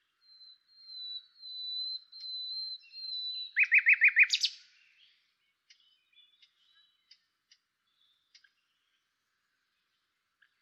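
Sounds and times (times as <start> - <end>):
common nightingale Luscinia megarhynchos song: 0.0 - 10.6.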